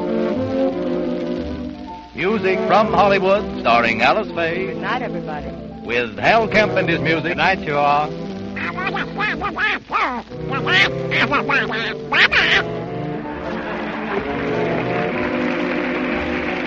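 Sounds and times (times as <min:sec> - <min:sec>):
band music: 0:00.0 - 0:16.6
speech: 0:02.2 - 0:12.8
raspy quacking cartoon duck voice: 0:08.6 - 0:12.8
laughter: 0:08.6 - 0:15.4.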